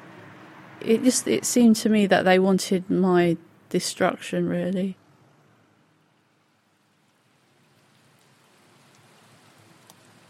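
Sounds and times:
steady rain falling outdoors: 0:00.0 - 0:10.2
speech: 0:00.8 - 0:05.0.

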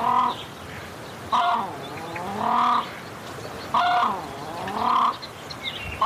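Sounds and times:
Australasian crested grebe giving harsh nasal honking calls: 0:01.3 - 0:03.1, 0:03.7 - 0:05.3.

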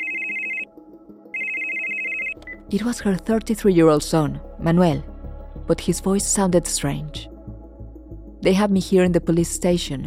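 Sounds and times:
mobile phone ringing in rural El Salvador: 0:00.0 - 0:00.7, 0:01.3 - 0:02.6
speech: 0:02.7 - 0:05.1, 0:05.7 - 0:07.3, 0:08.4 - 0:10.0.

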